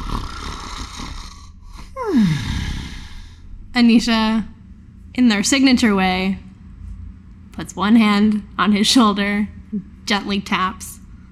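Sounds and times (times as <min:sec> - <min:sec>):
person imitating a man snoring in his chair: 0:00.0 - 0:03.4
soft rough breathy rumble: 0:00.0 - 0:04.6
speech: 0:03.8 - 0:04.5, 0:05.2 - 0:06.4, 0:07.6 - 0:11.0.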